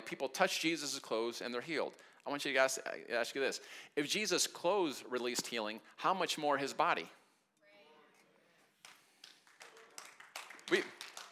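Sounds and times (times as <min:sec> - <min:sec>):
speech: 0:00.1 - 0:07.2, 0:10.7 - 0:10.9
single audience member's slow golf clap: 0:08.8 - 0:11.3.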